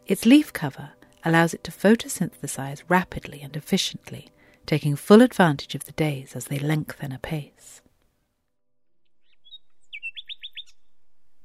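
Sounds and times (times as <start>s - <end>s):
speech: 0.1s - 7.8s
nightingale song with whistled notes and trills: 9.1s - 11.2s.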